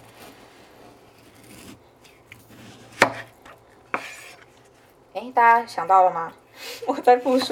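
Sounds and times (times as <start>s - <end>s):
faint scraping and handling noises: 0.0s - 5.0s, 7.1s - 7.5s
knife cutting a peeled white radish in half against a board: 1.2s - 4.6s
speech: 5.2s - 7.5s.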